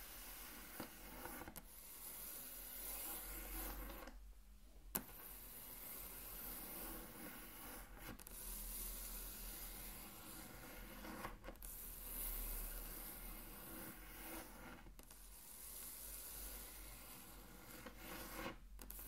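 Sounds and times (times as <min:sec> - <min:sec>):
scratchy rubbing of something dragged across a wooden tabletop: 0:00.0 - 0:04.1, 0:05.0 - 0:19.0.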